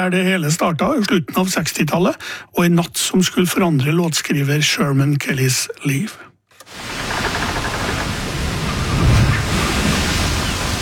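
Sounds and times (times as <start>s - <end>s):
speech: 0.0s - 6.9s
sea waves on the Caribbean between St. Thomas and St. Croix: 6.6s - 10.8s.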